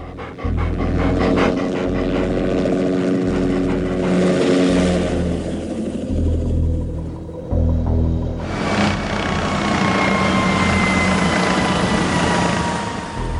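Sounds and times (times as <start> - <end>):
rapid panting: 0.0 - 6.1
helicopter with Norwegian markings buzzing overhead in the freezing Arctic: 0.0 - 13.3.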